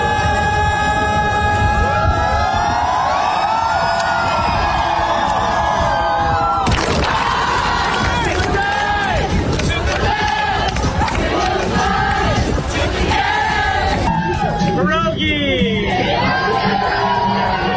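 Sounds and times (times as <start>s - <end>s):
crowd whoops and yells: 0.0s - 8.9s, 14.0s - 14.8s
large outdoor crowd of fans cheering in a market square: 0.0s - 14.9s, 15.9s - 17.7s.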